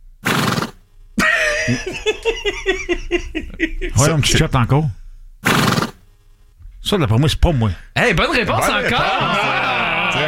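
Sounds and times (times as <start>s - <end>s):
horse snorting with a short breathy blast: 0.2s - 0.8s, 5.5s - 6.0s
laughter: 1.2s - 4.5s, 8.5s - 10.2s
speech: 1.7s - 5.0s, 6.9s - 9.6s.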